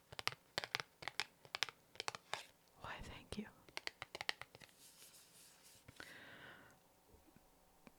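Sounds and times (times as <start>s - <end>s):
playing cards being dealt and handled: 0.1s - 2.5s, 3.7s - 6.1s.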